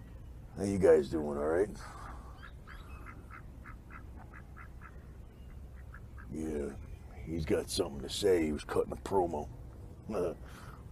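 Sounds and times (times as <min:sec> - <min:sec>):
speech: 0:00.6 - 0:02.0, 0:06.3 - 0:10.6
duck quacking: 0:03.0 - 0:05.0.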